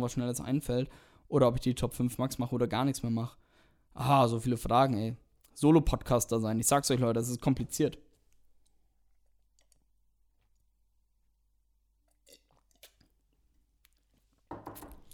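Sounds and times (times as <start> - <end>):
speech: 0.0 - 8.0
wet mouth clicks: 9.5 - 10.7, 12.1 - 14.2
person sipping coffee: 12.0 - 15.1
slurping gulps: 12.1 - 15.1.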